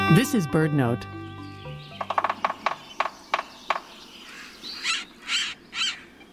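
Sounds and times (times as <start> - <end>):
speech: 0.2 - 1.2
sapsucker drilling: 1.2 - 6.2.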